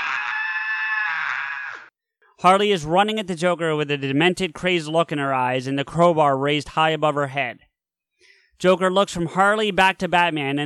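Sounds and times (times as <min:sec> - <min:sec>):
piercing high-pitched scream: 0:00.0 - 0:01.9
speech: 0:02.4 - 0:07.7, 0:08.6 - 0:10.6.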